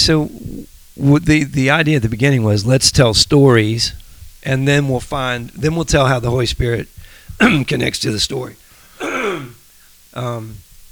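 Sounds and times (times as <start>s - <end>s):
speech: 0.0s - 0.4s, 1.0s - 8.6s, 10.2s - 10.6s
voiced throat clearing: 7.4s - 7.7s, 9.0s - 9.6s.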